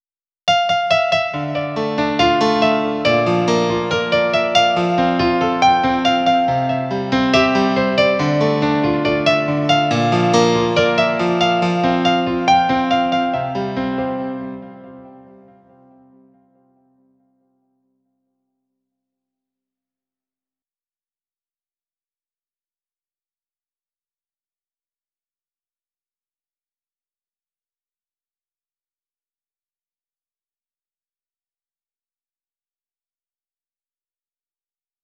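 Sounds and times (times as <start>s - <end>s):
piano: 0.5s - 17.6s.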